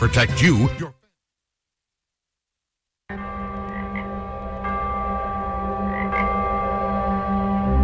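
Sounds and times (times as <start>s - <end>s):
speech: 0.0s - 1.0s
chorus of frogs croaking: 3.1s - 7.8s.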